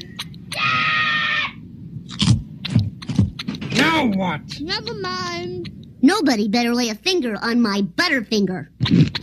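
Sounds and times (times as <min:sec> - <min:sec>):
child screaming: 0:00.5 - 0:01.6
speech: 0:04.0 - 0:09.2.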